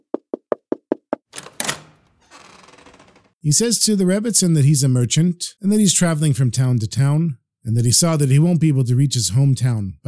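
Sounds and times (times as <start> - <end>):
stranger knocking on a wooden door: 0.0 - 1.3
speech: 3.4 - 10.0.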